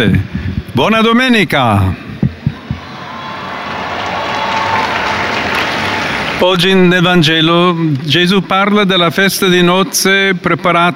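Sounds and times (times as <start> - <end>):
speech: 0.0 - 2.1, 6.4 - 10.9
low thuds: 2.2 - 2.8
large crowd applauding: 2.6 - 7.1.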